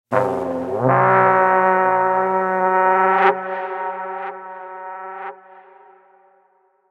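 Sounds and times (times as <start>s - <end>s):
battle horn: 0.1s - 6.6s.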